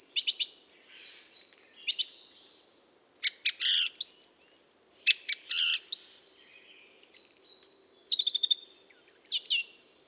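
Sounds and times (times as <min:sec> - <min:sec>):
mistle thrush song: 0:00.0 - 0:10.0.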